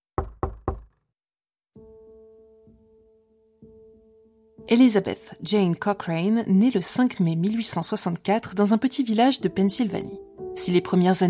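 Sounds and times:
knocking on a door: 0.0s - 1.0s
speech: 4.7s - 11.2s.

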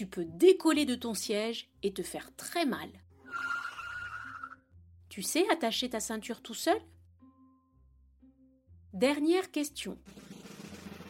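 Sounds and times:
speech: 0.0s - 3.5s, 5.1s - 7.0s, 8.9s - 10.4s
car tires screeching while braking suddenly: 3.2s - 4.6s.

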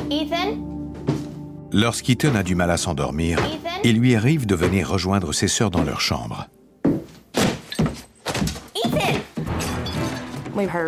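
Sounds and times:
speech: 0.1s - 0.8s, 1.7s - 6.6s, 10.6s - 10.8s
person tumbling down a staircase: 6.8s - 10.6s.

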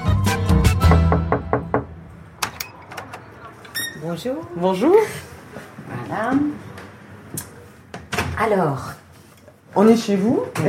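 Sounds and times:
sharp knocks on a front door: 0.8s - 2.0s
speech: 4.0s - 5.3s, 6.1s - 6.7s, 8.4s - 9.0s, 9.8s - 10.6s.

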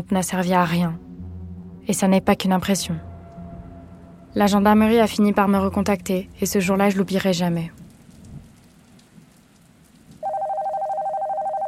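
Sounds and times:
speech: 0.0s - 1.1s, 1.8s - 3.1s, 4.4s - 7.8s
soft rain-like hiss: 0.0s - 11.6s
home landline telephone ringing with electronic trill: 10.2s - 11.6s.

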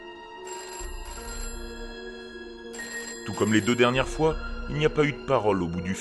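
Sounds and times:
telephone ringing: 0.0s - 4.6s
speech: 3.3s - 6.0s.

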